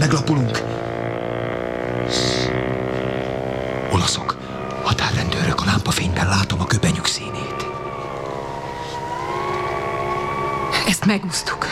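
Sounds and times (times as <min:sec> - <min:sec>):
speech: 0:00.0 - 0:00.7, 0:04.0 - 0:04.3, 0:05.8 - 0:07.7, 0:10.9 - 0:11.7
motorboat engine droning on a lake: 0:00.0 - 0:11.7.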